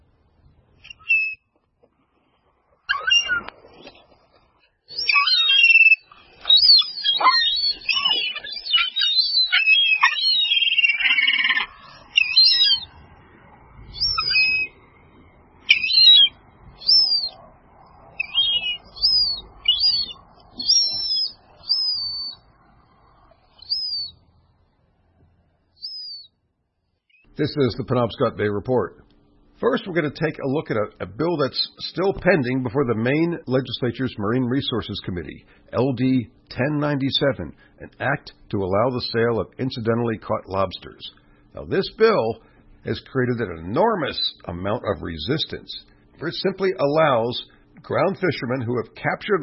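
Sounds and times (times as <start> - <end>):
seagulls chirping: 2.8 - 4.2, 4.9 - 24.2, 25.8 - 26.3
speech: 27.4 - 29.0, 29.6 - 49.4.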